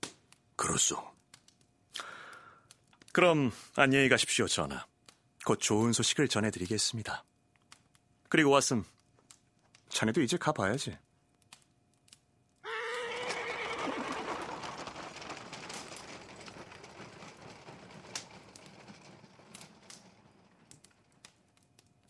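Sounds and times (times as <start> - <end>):
speech: 0.8 - 1.2, 3.2 - 7.3, 8.3 - 9.0, 10.0 - 11.0
royal horse-drawn carriage wheels rolling down a street: 12.6 - 22.0.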